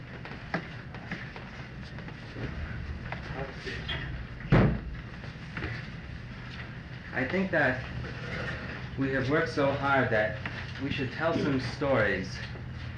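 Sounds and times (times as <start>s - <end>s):
steady murmuring room background: 0.2s - 12.9s
door swinging shut with a solid thump: 4.5s - 4.9s
speech: 7.2s - 7.9s, 9.0s - 12.5s.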